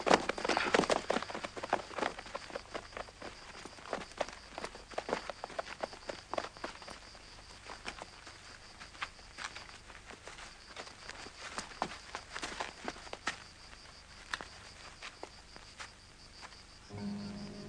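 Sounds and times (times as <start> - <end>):
horses' hooves clip-clopping: 0.0 - 16.6.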